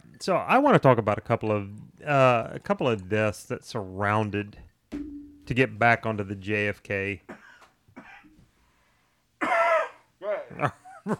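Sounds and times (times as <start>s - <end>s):
speech: 0.2s - 7.4s, 10.6s - 11.1s
person coughing after something went down wrong: 7.3s - 8.3s, 9.4s - 10.1s.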